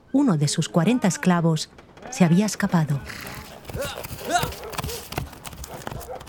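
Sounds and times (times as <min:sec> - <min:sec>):
speech: 0:00.1 - 0:04.7
indistinct voice-like sounds: 0:00.3 - 0:05.4
horse hooves clip-clopping: 0:01.7 - 0:06.2.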